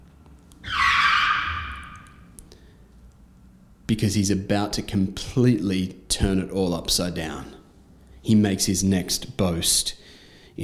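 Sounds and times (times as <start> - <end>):
screeching car brakes sound effect: 0.6 - 2.3
speech: 3.9 - 7.6, 8.2 - 10.6.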